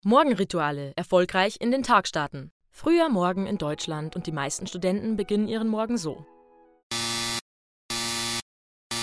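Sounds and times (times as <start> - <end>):
speech: 0.0 - 6.3
loud harsh alarm clock buzzer: 6.9 - 9.0.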